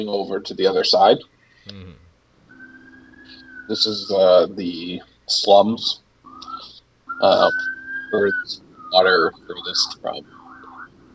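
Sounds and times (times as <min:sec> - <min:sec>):
speech: 0:00.0 - 0:02.0, 0:03.7 - 0:06.5, 0:07.2 - 0:10.4
siren wailing: 0:02.5 - 0:05.0, 0:06.2 - 0:11.1.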